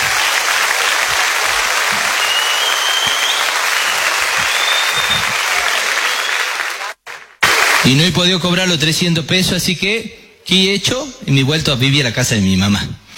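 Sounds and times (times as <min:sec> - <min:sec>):
loud sustained applause from a large audience: 0:00.0 - 0:08.1
speech: 0:07.9 - 0:13.0.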